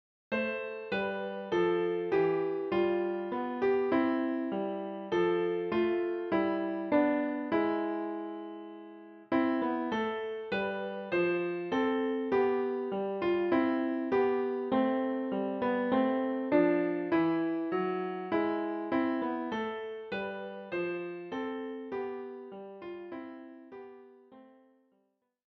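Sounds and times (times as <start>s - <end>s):
piano: 0.3s - 24.9s.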